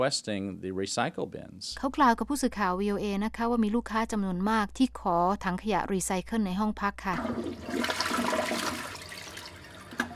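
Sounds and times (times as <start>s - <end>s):
speech: 0.0s - 8.3s
water-saving toilet flushing in an eco-friendly hotel: 7.1s - 10.1s.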